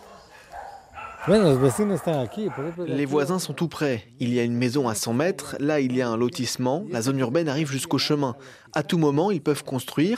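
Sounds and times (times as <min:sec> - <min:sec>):
dog barking from a house: 0:00.0 - 0:03.0
speech: 0:01.2 - 0:10.1.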